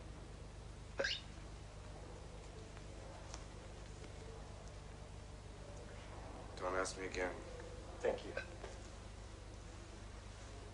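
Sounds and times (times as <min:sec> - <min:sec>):
low hum: 0:00.0 - 0:10.7
hiccup: 0:01.0 - 0:01.2
speech: 0:01.0 - 0:01.3, 0:06.6 - 0:08.8.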